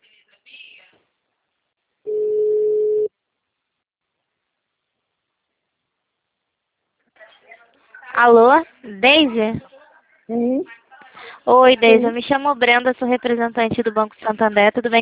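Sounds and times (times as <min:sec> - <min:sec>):
telephone ringback tone on an outgoing call: 0:02.1 - 0:03.1
speech: 0:08.2 - 0:09.7, 0:10.3 - 0:10.8, 0:11.4 - 0:15.0.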